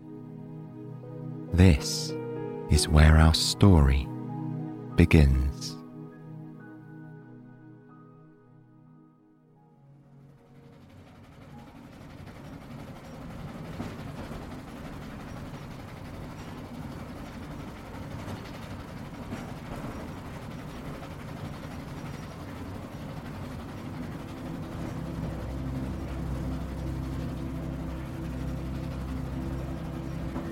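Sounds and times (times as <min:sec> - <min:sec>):
speech: 0:01.5 - 0:04.1, 0:05.0 - 0:05.8
moving train rattling and rumbling heard from inside a carriage: 0:10.6 - 0:30.5.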